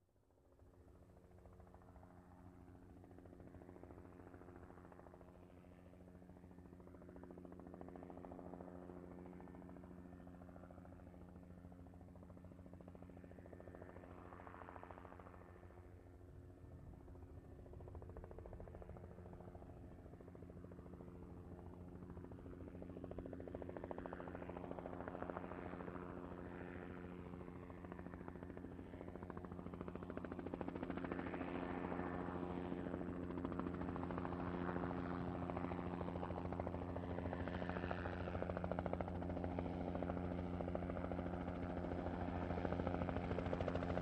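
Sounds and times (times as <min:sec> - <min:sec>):
helicopter slowly flying over: 0:00.2 - 0:43.9.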